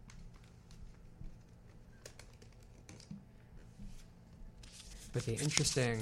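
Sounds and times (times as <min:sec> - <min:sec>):
low steady hum: 0:00.0 - 0:06.0
A4 paper rustling and creasing while folded to wrap books: 0:04.6 - 0:06.0
speech: 0:05.2 - 0:06.0.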